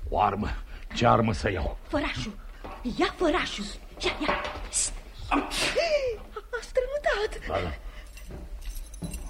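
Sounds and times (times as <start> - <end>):
speech: 0.1 - 7.8
bunch of keys jangling at a desk drawer: 7.9 - 9.2.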